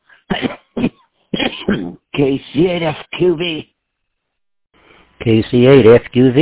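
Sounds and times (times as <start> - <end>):
person coughing harshly: 0.1 - 2.1
speech: 2.2 - 3.7, 5.2 - 6.3.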